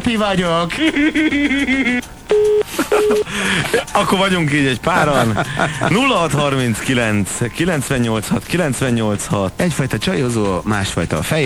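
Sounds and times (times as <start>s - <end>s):
speech: 0.1s - 11.4s
laughter: 0.7s - 2.0s, 2.6s - 10.9s
telephone line ringing on a radio phone-in line: 1.0s - 7.4s.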